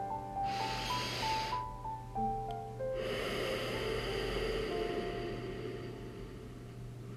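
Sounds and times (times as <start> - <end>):
soft sustained music with a gentle melody: 0.0 - 7.1
deep breath in: 0.4 - 1.7, 3.0 - 6.9.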